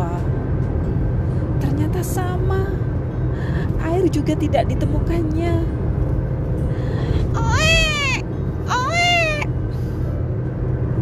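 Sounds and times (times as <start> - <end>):
rushing noise: 0.0 - 11.0
speech: 2.0 - 5.8
baby crying in wavering wails: 7.4 - 9.5.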